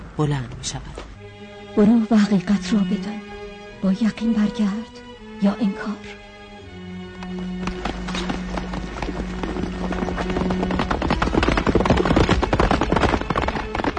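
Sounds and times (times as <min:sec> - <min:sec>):
speech: 0:00.2 - 0:01.0, 0:01.8 - 0:06.3
horse hooves galloping as a rider sets off on horseback: 0:07.1 - 0:13.9.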